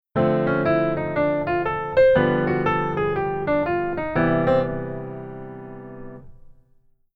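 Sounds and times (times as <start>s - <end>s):
keyboard chords: 0.2s - 6.4s.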